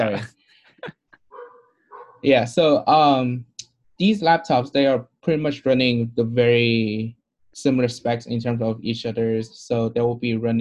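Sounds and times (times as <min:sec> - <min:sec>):
speech: 0:00.0 - 0:01.0, 0:02.2 - 0:10.5
dog barking and whining: 0:01.3 - 0:02.2.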